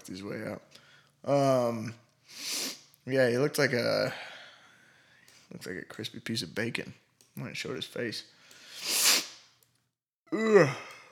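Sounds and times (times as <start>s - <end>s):
speech: 0.1s - 4.3s, 5.5s - 9.0s, 10.3s - 10.9s
long breathy yawn: 10.3s - 11.1s.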